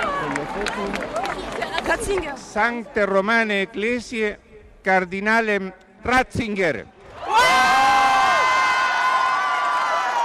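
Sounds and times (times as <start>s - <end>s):
huge crowd cheering outdoors in a square: 0.0s - 1.9s, 7.1s - 10.2s
speech: 0.6s - 1.2s, 1.9s - 7.0s.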